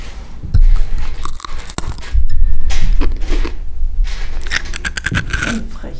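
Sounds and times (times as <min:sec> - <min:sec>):
loud crunching chews of a crisp letter snack: 0:00.8 - 0:03.6, 0:04.3 - 0:05.6
teeth biting into a crisp Q-shaped letter snack: 0:01.0 - 0:02.2, 0:02.8 - 0:03.6, 0:04.4 - 0:05.6.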